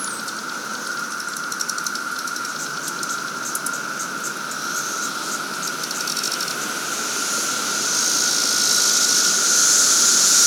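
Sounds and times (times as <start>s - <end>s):
17-year periodical cicadas massed chorus in a capital city: 0.0s - 10.4s
high hissing shimmer of periodical cicadas: 4.0s - 10.4s.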